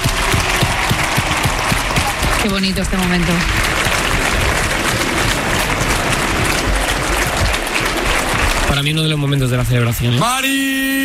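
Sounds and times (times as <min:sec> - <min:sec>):
steady rhythmic thumping: 0:00.0 - 0:10.2
large audience applauding: 0:00.0 - 0:11.0
speech: 0:02.4 - 0:03.8, 0:08.8 - 0:11.0.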